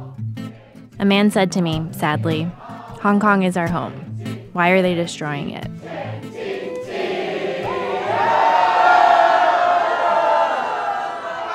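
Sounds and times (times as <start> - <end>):
large crowd on a boat singing a national anthem: 0.1 - 0.9, 2.3 - 4.6, 5.6 - 11.5
speech: 1.0 - 6.3.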